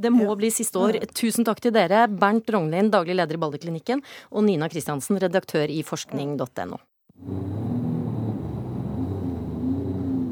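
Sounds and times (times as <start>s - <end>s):
speech: 0.0s - 7.6s
jet ski engine roaring with a man riding on the fjord: 7.2s - 10.2s.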